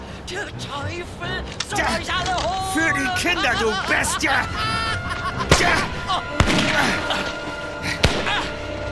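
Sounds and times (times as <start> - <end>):
speech: 0.3 - 4.9, 5.4 - 7.3
laughter: 1.8 - 8.6
sharp gunshots: 5.5 - 7.4, 8.0 - 8.7.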